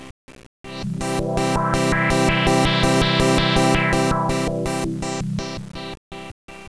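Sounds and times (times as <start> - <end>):
synthesizer sweep: 0.7 - 5.6.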